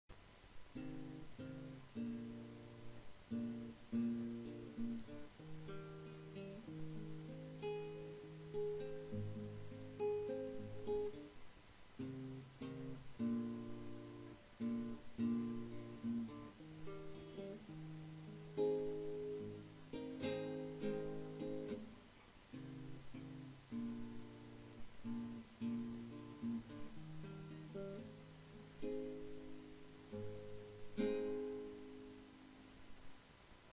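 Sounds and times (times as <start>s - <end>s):
music: 0.7s - 11.4s, 12.0s - 32.8s.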